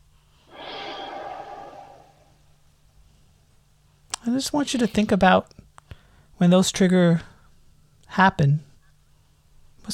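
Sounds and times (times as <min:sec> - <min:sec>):
deep breath during a seated guided relaxation exercise: 0:00.4 - 0:02.5
speech: 0:04.2 - 0:05.6, 0:06.4 - 0:07.3, 0:08.1 - 0:08.7.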